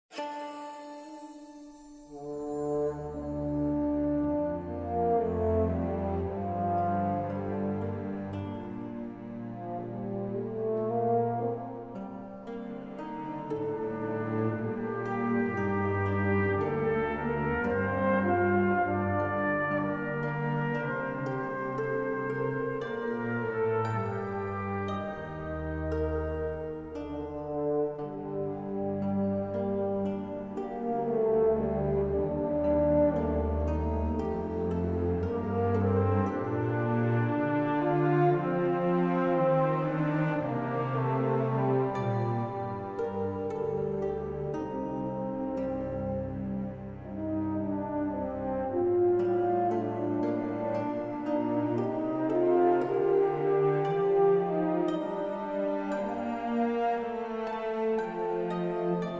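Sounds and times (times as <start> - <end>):
music: 0.0 - 59.1.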